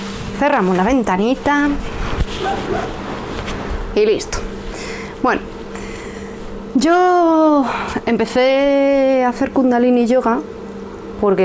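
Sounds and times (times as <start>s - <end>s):
speech: 0.4s - 3.1s, 3.9s - 4.6s, 5.2s - 5.5s, 6.8s - 10.6s, 11.2s - 11.4s
dogs barking: 2.2s - 3.3s.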